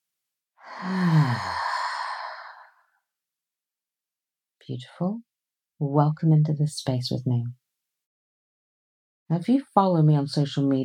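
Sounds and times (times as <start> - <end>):
long slow deep breath during a guided relaxation exercise: 0.6 - 2.8
speech: 0.8 - 1.1, 4.7 - 7.6, 9.3 - 10.8.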